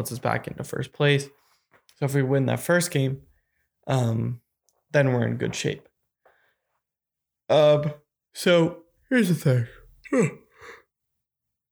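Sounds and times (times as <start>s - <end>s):
speech: 0.0s - 5.9s, 7.5s - 10.4s
person yawning with a voiced groan and breathy exhale: 10.0s - 10.8s.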